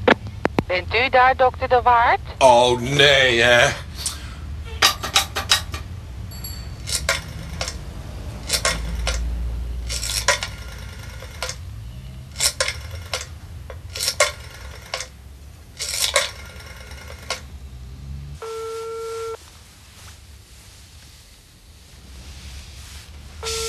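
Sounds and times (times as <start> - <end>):
speech: 0.7 - 3.9
quarter coins clinking into a payphone slot: 4.8 - 7.8, 8.4 - 9.3, 9.9 - 11.6, 12.4 - 15.2, 15.8 - 17.4.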